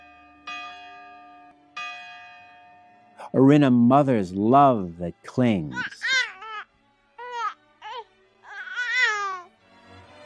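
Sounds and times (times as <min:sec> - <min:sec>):
morning church bell tolling: 0:00.0 - 0:04.9
speech: 0:03.3 - 0:06.0.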